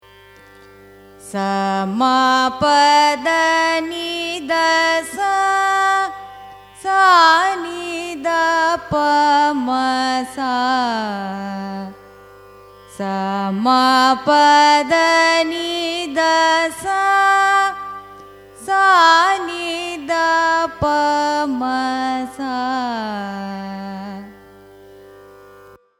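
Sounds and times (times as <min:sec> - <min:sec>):
Carnatic raga kuntalavarali ascending and descending scale: 0:00.0 - 0:25.9.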